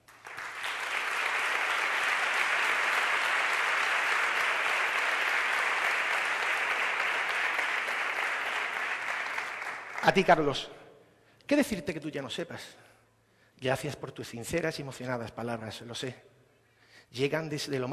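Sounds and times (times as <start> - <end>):
audience applause at a public proclamation event: 0.0 - 10.5
speech: 10.0 - 10.8, 11.5 - 12.9, 13.6 - 16.3, 17.1 - 17.9.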